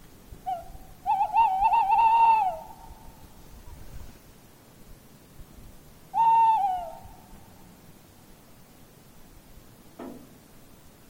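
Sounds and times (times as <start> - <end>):
tawny owl hooting a wavering tremulous note: 0.4 - 3.4, 6.1 - 7.6.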